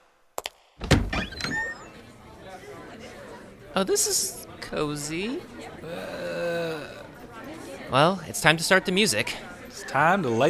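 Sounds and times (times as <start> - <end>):
door swinging with a solid thunk and creaky squeal: 0.8 - 1.9
low murmur: 1.4 - 10.4
speech: 3.8 - 6.9, 7.9 - 10.4.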